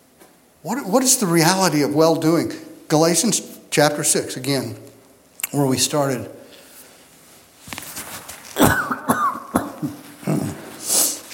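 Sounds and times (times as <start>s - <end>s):
speech: 0.6s - 4.9s, 5.5s - 6.4s
dry hacking coughs from a tickle in the throat: 8.6s - 10.7s.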